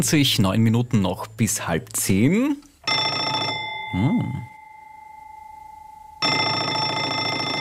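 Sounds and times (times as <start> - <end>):
speech: 0.0 - 2.7, 3.9 - 4.5
telephone bell ringing: 2.8 - 7.6.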